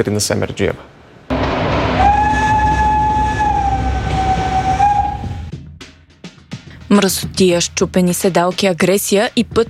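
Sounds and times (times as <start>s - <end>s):
speech: 0.0s - 1.0s, 6.9s - 9.6s
Bulgarian State Railways passenger train rumbling along the rails: 1.3s - 5.5s.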